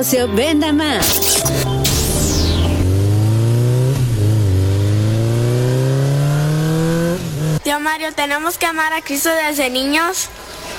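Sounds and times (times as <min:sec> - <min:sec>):
speech: 0:00.0 - 0:01.8, 0:07.7 - 0:10.7
motorcycle engine revving: 0:01.0 - 0:07.6.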